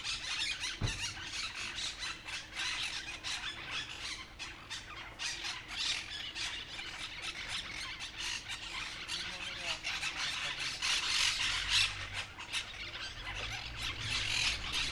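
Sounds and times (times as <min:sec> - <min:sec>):
monk parakeet flock chattering in a street in Humanes de Madrid, Spain: 0:00.2 - 0:14.9
brief low thump: 0:00.8 - 0:01.2.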